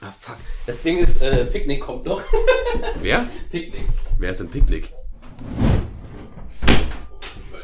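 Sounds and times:
speech: 0.1s - 5.6s
laughter: 2.1s - 4.1s
door slamming shut: 5.6s - 7.2s
dull thud of a moving door: 6.3s - 7.1s.

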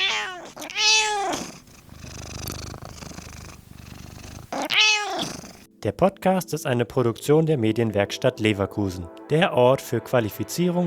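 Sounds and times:
cat meowing loudly: 0.0s - 5.6s
speech: 5.8s - 10.8s.

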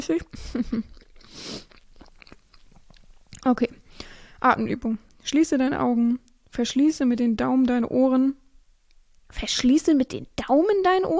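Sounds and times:
speech: 0.0s - 1.7s, 3.4s - 3.8s, 4.4s - 8.4s, 9.3s - 11.1s
smacking wet mouth sounds: 0.2s - 3.5s
chewing a piece of banana: 0.6s - 3.5s.

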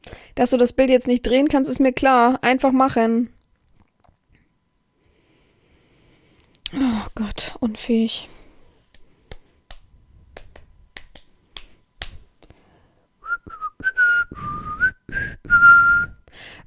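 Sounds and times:
speech: 0.4s - 3.4s, 6.7s - 8.4s
finger snaps: 8.9s - 12.6s
person whistling a short tune: 13.2s - 16.3s.

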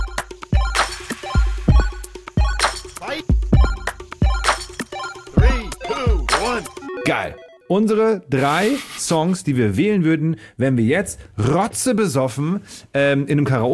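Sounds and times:
short trailer jingle of rhythmic electronic music: 0.0s - 7.9s
speech: 3.0s - 3.4s, 6.5s - 13.7s.

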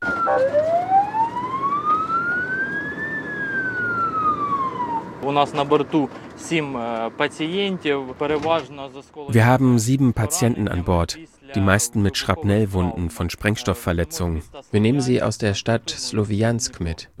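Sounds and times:
ambulance siren wailing on board an ambulance carrying patients in Ukraine: 0.0s - 5.6s
speech: 5.3s - 17.1s.

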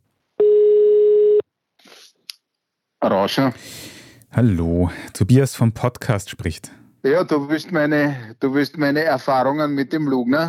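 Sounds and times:
telephone beep while placing a call: 0.4s - 1.4s
speech: 3.0s - 10.4s.

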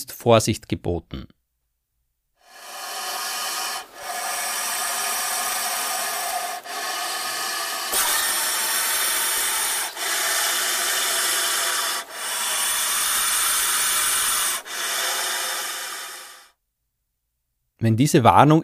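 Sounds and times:
speech: 0.2s - 1.4s, 17.8s - 18.6s
puff adder puffed up giving a deep hissing warning: 2.4s - 16.6s.

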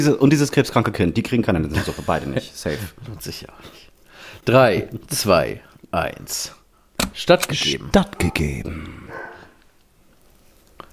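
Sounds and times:
speech: 0.0s - 9.2s
laughter: 1.7s - 2.9s
dog barking through a closed door: 9.0s - 9.6s.

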